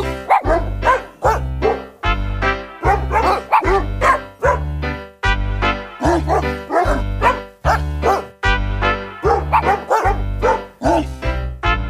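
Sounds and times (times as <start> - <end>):
dog barks pitched to a Christmas song melody: 0.0 - 2.0, 2.8 - 4.7, 5.9 - 8.4, 9.1 - 11.2
thumping bass backing: 0.0 - 11.8.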